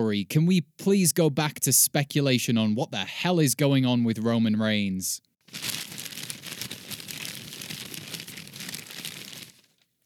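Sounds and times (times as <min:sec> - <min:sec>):
speech: 0:00.0 - 0:05.7
paper being crumpled: 0:05.4 - 0:09.9
soft rustle: 0:05.5 - 0:09.9.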